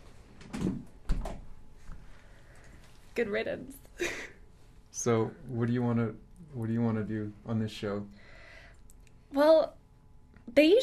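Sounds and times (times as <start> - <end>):
door swung shut with a solid thud: 0.4 - 1.5
speech: 3.2 - 4.3, 5.0 - 8.2, 9.3 - 9.8, 10.6 - 10.8.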